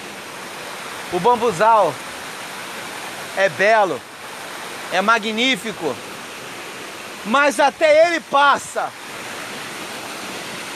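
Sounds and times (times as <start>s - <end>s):
waterfall rushing: 0.0s - 10.7s
speech: 1.1s - 2.0s, 3.4s - 4.1s, 4.9s - 6.1s, 7.2s - 9.0s.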